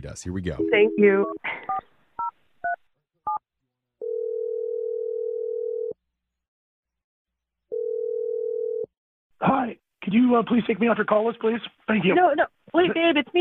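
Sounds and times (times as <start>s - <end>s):
speech: 0.0s - 1.6s, 10.1s - 13.3s
touch-tone telephone keypad beeps: 0.6s - 2.3s
telephone dial tone while calling a number: 4.0s - 6.0s, 7.7s - 8.9s.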